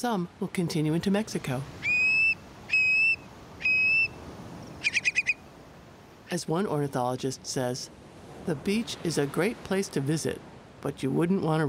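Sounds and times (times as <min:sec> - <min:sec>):
speech: 0:00.0 - 0:01.8, 0:06.3 - 0:11.6
long-billed curlew male bubbling spring song in display flight over grassland: 0:01.8 - 0:04.2, 0:04.8 - 0:05.4.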